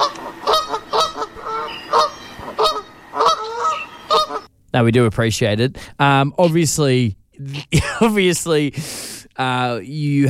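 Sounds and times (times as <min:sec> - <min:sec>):
magpie goose honking: 0:00.0 - 0:04.5
speech: 0:04.8 - 0:10.2.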